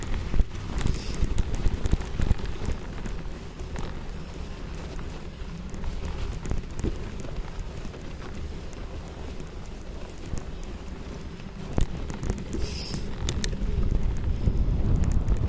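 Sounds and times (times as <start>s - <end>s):
low rumble on a city cycle path after a snowstorm: 0.0s - 15.4s
wind buffeting the microphone: 0.0s - 15.4s
short clicks and scrapes: 0.8s - 1.5s, 12.2s - 13.6s.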